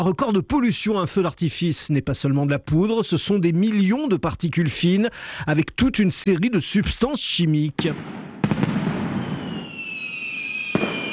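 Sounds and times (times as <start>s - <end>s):
speech: 0.0s - 8.2s
fireworks and firecrackers exploding in the sky over Washington: 7.8s - 11.1s
long whistling firework whine: 9.1s - 11.1s.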